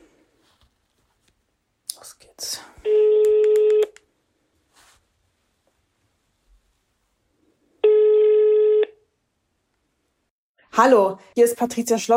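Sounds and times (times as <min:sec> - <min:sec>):
telephone ringing tone as a call is placed to a retired homicide investigator: 0:02.9 - 0:04.0, 0:07.8 - 0:09.0
speech: 0:10.8 - 0:12.1.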